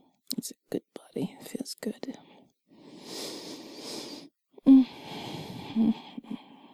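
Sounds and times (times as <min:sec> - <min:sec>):
speech: 0:00.4 - 0:02.3, 0:05.8 - 0:06.0
slow breathing: 0:02.2 - 0:06.7.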